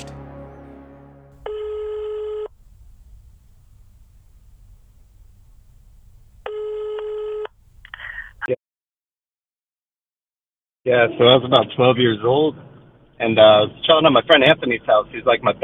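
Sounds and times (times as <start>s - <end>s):
low steady hum: 0.0s - 8.5s
short rustle: 1.4s - 8.5s
telephone ringing for an incoming caller: 1.4s - 8.5s
speech: 10.9s - 15.6s.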